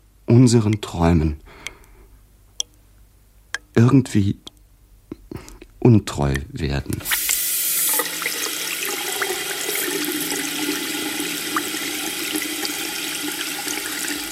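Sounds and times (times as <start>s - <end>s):
speech: 0.3s - 1.7s, 3.8s - 4.5s, 5.3s - 7.2s
hot water gushing from a tap: 7.0s - 14.2s.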